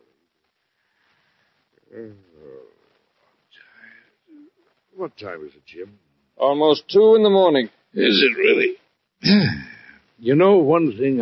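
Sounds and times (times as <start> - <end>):
speech: 1.9 - 2.8, 5.0 - 11.1
man yawning wearily: 9.2 - 10.0.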